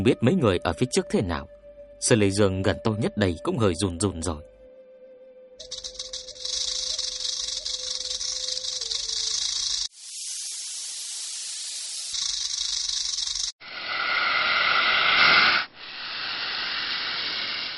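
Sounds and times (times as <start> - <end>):
speech: 0.0 - 4.5, 5.6 - 5.9
shrill metallic hissing of snakes with scales rubbing together: 5.6 - 17.7.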